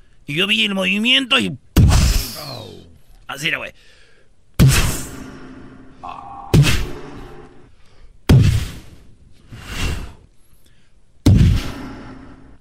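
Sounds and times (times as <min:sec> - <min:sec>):
speech: 0:00.3 - 0:01.6, 0:02.4 - 0:04.0
gunshot sound effect: 0:04.6 - 0:05.6, 0:06.5 - 0:07.4, 0:08.3 - 0:08.9, 0:11.2 - 0:12.3.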